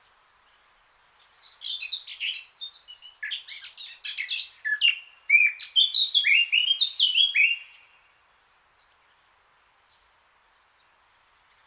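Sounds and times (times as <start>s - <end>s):
Eurasian blackcap Sylvia atricapilla song: 1.4s - 7.8s.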